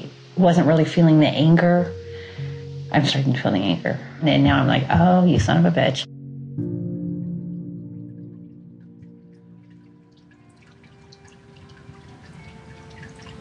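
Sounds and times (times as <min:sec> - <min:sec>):
indoor decorative waterfall trickling in a therapist's waiting room: 0:00.0 - 0:05.4, 0:08.2 - 0:13.3
low sustained piped music: 0:00.0 - 0:13.3
speech: 0:00.4 - 0:02.0, 0:02.9 - 0:06.7.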